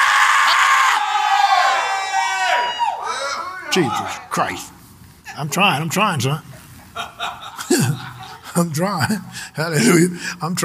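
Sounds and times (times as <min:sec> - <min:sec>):
audience screaming: 0:00.0 - 0:04.3
speech: 0:03.7 - 0:04.8, 0:05.4 - 0:10.6
laughter: 0:06.5 - 0:10.1.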